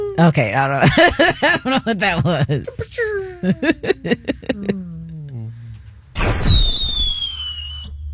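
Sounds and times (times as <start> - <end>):
laughter: 0.1 - 5.5
speech: 0.2 - 4.8
bottle rocket firework whistling in the air: 6.2 - 8.0.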